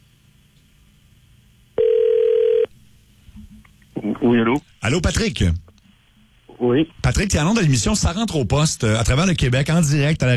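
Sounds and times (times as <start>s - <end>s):
telephone ringback tone on a line after a call is dialed: 1.8s - 2.7s
speech: 4.3s - 5.6s, 6.6s - 10.3s.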